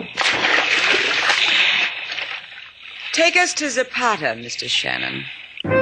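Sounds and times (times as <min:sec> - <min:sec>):
heavy coffin plunging into the sea: 0:00.1 - 0:03.6
churning sloshing sea spray: 0:00.1 - 0:05.7
speech: 0:03.2 - 0:05.4.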